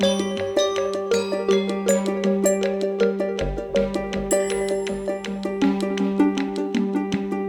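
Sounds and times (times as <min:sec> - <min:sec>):
game intro music loop: 0:00.0 - 0:07.4.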